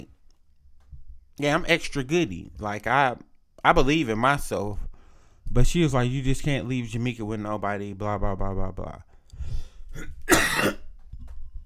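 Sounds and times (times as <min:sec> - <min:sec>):
speech: 0:01.4 - 0:04.9, 0:05.5 - 0:09.1, 0:10.0 - 0:10.8
quiet breathing: 0:04.8 - 0:05.5, 0:09.1 - 0:10.0
loud harsh cough: 0:10.0 - 0:10.9
throat clearing: 0:10.0 - 0:10.9.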